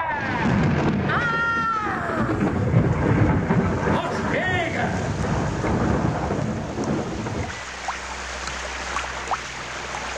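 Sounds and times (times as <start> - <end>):
heavy steady rain: 0.2 - 10.1
deep rumbling roar: 1.9 - 7.7.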